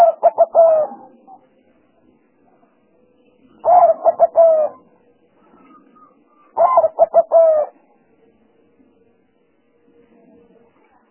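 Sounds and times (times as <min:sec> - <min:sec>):
spotted dove cooing: 0:00.0 - 0:01.5, 0:03.6 - 0:07.8.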